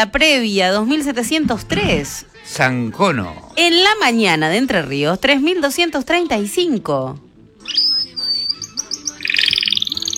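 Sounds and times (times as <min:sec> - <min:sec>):
speech: 0:00.0 - 0:07.8
small birds chirping: 0:07.4 - 0:10.1.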